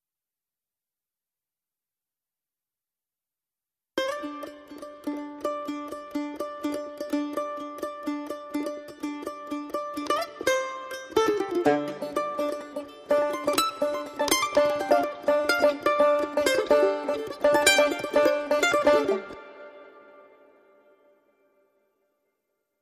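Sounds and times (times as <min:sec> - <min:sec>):
banjo: 0:04.0 - 0:20.9
mandolin: 0:04.0 - 0:21.7.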